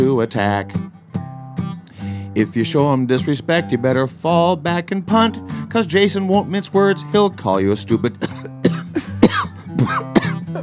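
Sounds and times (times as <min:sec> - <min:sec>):
speech: 0:00.0 - 0:01.0, 0:02.4 - 0:09.1
person coughing with something caught in the throat: 0:08.2 - 0:10.6.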